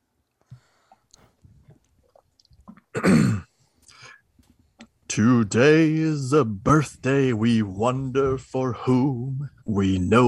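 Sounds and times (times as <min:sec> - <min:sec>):
faint small mouth and swallowing noises: 0:00.9 - 0:03.0
loud harsh throat clearing: 0:02.7 - 0:04.1
speech: 0:05.2 - 0:10.2.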